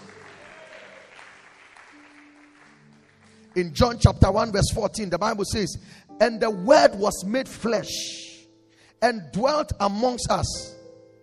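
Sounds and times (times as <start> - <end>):
church audience clapping hands: 0.0 - 4.0
speech: 3.6 - 8.3, 9.0 - 10.8.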